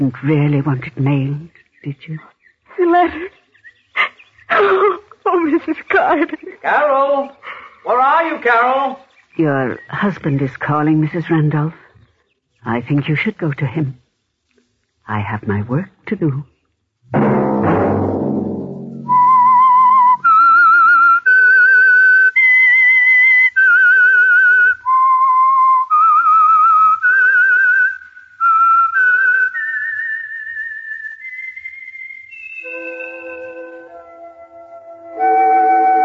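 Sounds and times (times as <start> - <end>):
speech: 0.0 - 3.4, 4.5 - 11.8, 12.6 - 14.0, 15.1 - 16.5, 17.1 - 17.5
brief low rumbling: 17.0 - 20.8
clear loud whistled melody: 19.0 - 36.0
short musical chord: 32.7 - 36.0.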